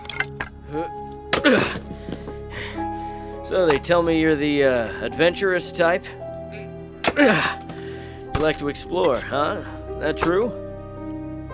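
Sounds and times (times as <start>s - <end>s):
axe chopping firewood: 0.0s - 2.3s, 3.6s - 3.9s, 7.0s - 10.6s
speech: 3.5s - 6.2s, 7.2s - 7.6s, 8.4s - 10.6s.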